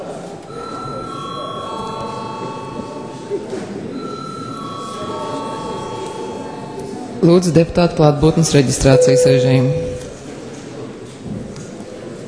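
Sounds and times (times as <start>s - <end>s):
indistinct murmuring voices: 0.0s - 12.2s
room noise: 0.4s - 10.4s
bell rung to announce a break: 0.5s - 7.5s, 8.8s - 10.1s
speech: 7.2s - 9.9s.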